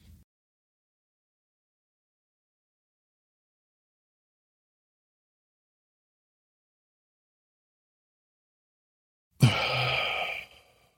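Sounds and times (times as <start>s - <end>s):
deep breath in during a stress-relief breathing exercise: 9.4s - 10.9s.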